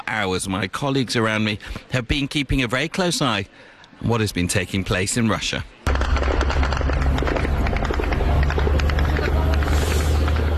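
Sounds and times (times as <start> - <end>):
speech: 0.1 - 6.2
Ukrainian military drones in flight engine drone: 5.9 - 10.5
sharp crackling bursts: 5.9 - 10.5.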